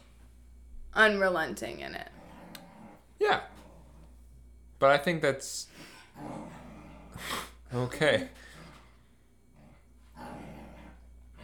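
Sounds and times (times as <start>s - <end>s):
speech: 1.0s - 2.2s, 3.2s - 3.5s, 4.8s - 6.6s, 7.2s - 8.5s
male puppy growling: 2.0s - 4.4s, 6.0s - 11.4s.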